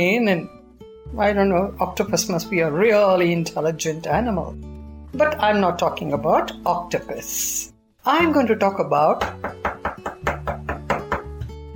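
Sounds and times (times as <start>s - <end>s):
speech: 0.0s - 10.0s
sharp raps knocking on a door: 9.2s - 11.4s.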